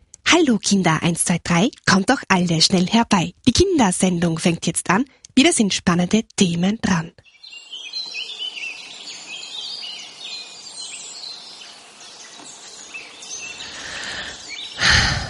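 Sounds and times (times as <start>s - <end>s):
speech: 0.3s - 7.2s
several birds chirping and singing: 7.2s - 15.2s.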